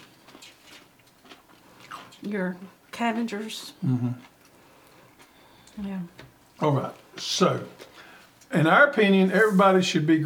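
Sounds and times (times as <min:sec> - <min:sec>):
crunching on cucumber slices dressed with balsamic vinegar: 0:00.0 - 0:02.2
speech: 0:02.2 - 0:04.3, 0:05.8 - 0:07.9, 0:08.5 - 0:10.2.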